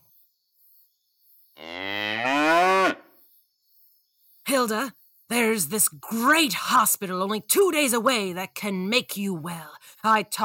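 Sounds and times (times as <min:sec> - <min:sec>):
cow mooing: 0:01.6 - 0:03.0
speech: 0:04.6 - 0:10.4.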